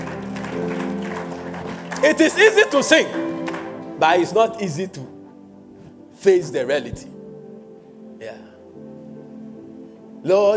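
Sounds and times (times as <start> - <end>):
audience clapping: 0.0 - 4.3
speech: 2.0 - 3.3, 4.0 - 5.1, 6.2 - 7.2, 10.2 - 10.5.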